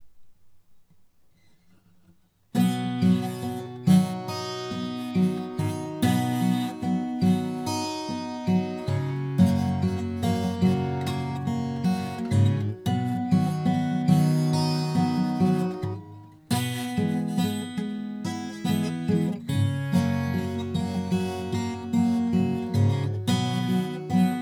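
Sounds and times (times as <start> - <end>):
guitar picking: 2.6 - 24.4.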